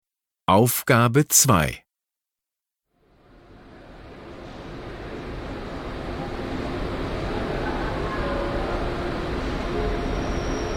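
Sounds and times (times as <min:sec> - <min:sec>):
speech: 0:00.5 - 0:01.8
high-speed train pulling into station: 0:03.8 - 0:10.2.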